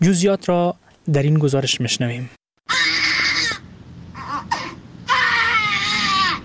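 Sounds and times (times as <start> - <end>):
speech: 0.0 - 2.4
newborn babies born addicted to drugs crying loudly: 2.7 - 6.4
newborn baby whimpering: 4.2 - 6.4.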